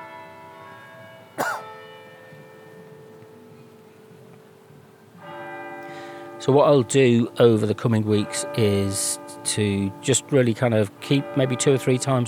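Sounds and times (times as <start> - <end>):
cathedral bells chiming the hour at 5 p.m.: 0.0 - 4.3, 5.2 - 12.2
person coughing: 1.4 - 1.7
speech: 6.4 - 12.2.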